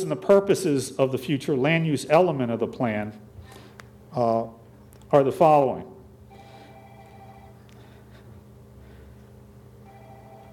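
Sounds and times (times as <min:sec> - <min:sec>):
speech: 0:00.0 - 0:03.3, 0:04.1 - 0:05.9
mobile phone ringing in an audience: 0:06.3 - 0:07.6, 0:09.8 - 0:10.5.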